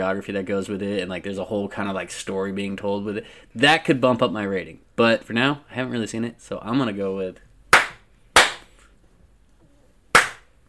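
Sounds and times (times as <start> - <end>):
speech: 0.0 - 7.5
hand slaps: 7.7 - 8.8, 10.1 - 10.5.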